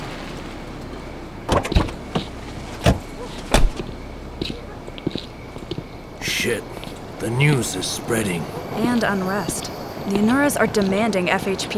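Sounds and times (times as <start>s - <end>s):
car door thuds and clunks: 1.5s - 3.9s
speech: 7.4s - 11.7s.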